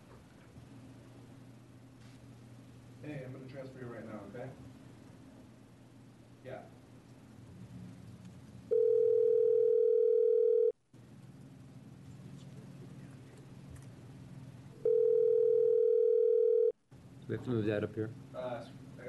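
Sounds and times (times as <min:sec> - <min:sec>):
room noise: 0:00.0 - 0:10.3, 0:11.0 - 0:16.0, 0:16.9 - 0:19.0
speech: 0:03.0 - 0:04.8, 0:06.4 - 0:06.8, 0:17.3 - 0:19.0
telephone dial tone from a conference phone at a Senate committee meeting: 0:08.7 - 0:10.7, 0:14.8 - 0:16.7.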